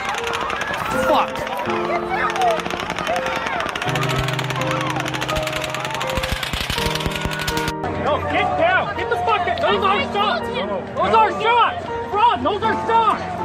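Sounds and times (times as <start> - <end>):
rapid automatic gunfire at an outdoor concert: 0.0 - 7.7
people talking and shouting: 0.0 - 13.4.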